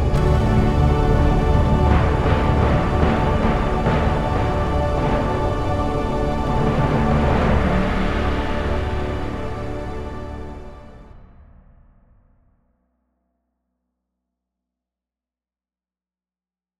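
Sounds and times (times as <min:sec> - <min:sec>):
cinematic chime: 0:00.1 - 0:11.1.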